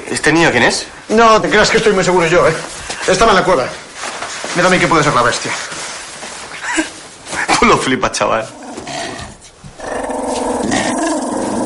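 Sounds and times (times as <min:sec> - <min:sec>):
speech: 0:00.2 - 0:03.8, 0:04.5 - 0:05.7, 0:07.6 - 0:08.6
dog growling at a child in a cave: 0:08.5 - 0:11.6.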